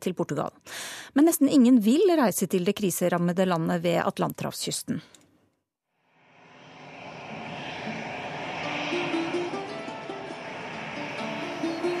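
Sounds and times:
speech: 0.0s - 5.2s
aircraft engine roaring with rumbling drone and whining tones: 6.1s - 11.9s.

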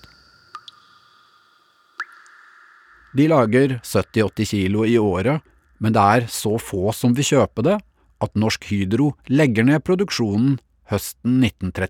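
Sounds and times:
water dripping: 0.0s - 6.4s
speech: 3.1s - 11.8s.

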